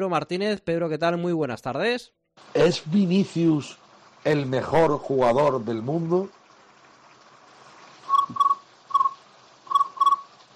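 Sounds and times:
speech: 0.0 - 6.4
crickets chirping at night: 8.0 - 10.5.

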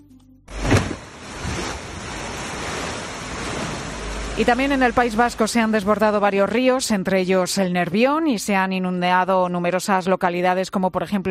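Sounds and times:
floodwater rushing through a street: 0.5 - 6.2
speech: 4.4 - 11.2.

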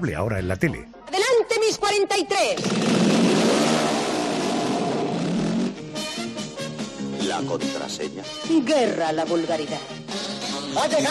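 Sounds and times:
speech: 0.0 - 4.2, 7.3 - 10.2, 10.8 - 11.0
motorcycle engine revving: 2.6 - 5.8.

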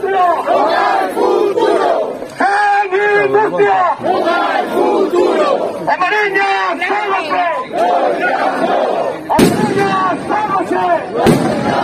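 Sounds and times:
large crowd chanting rhythmic slogans at a street protest for industrial jobs: 0.0 - 11.8
speech: 5.5 - 10.1
firecrackers or bombas de palenque cracking: 9.3 - 10.6, 11.2 - 11.8.

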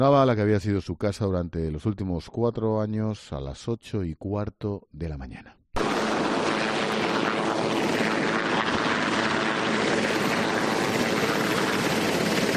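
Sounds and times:
speech: 0.0 - 5.6
helicopter departing with rotor and engine noise: 5.8 - 12.5.

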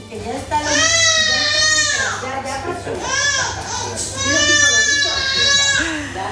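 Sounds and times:
baby crying after vaccination injection: 0.6 - 2.3, 3.0 - 6.2.

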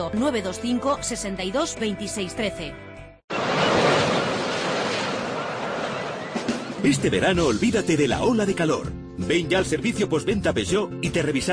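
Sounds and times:
speech: 0.0 - 2.9, 6.8 - 11.5
sea waves breaking on shore: 3.3 - 6.8.

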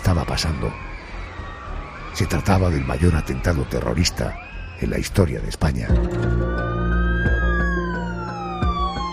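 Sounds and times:
ambulance sirens wailing: 0.0 - 9.1
speech: 0.2 - 1.0, 2.2 - 6.7.

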